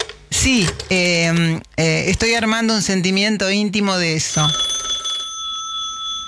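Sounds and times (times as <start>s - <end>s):
speech: 0.4s - 4.7s
old telephone mechanical bell ringing: 4.2s - 6.2s.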